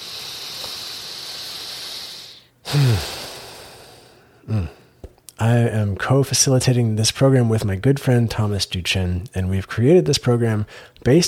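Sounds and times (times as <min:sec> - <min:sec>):
steady hiss: 0:00.0 - 0:04.2
deliberately taken breath: 0:00.0 - 0:05.1
speech: 0:02.7 - 0:03.2, 0:05.5 - 0:11.2.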